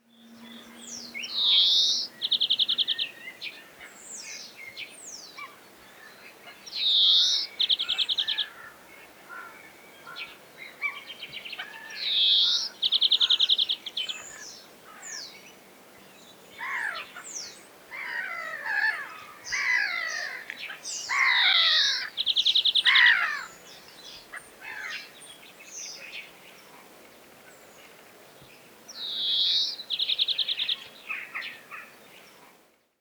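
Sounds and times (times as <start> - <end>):
European greenfinch voice: 0.5 - 3.2, 6.8 - 8.6, 11.6 - 15.2, 16.6 - 23.6, 29.0 - 31.9.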